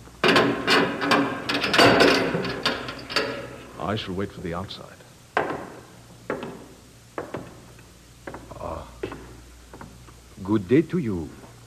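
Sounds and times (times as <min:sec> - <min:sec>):
heavy prison cell door being unlocked and swung open: 0:00.2 - 0:03.8
speech: 0:03.9 - 0:05.0, 0:10.5 - 0:11.4.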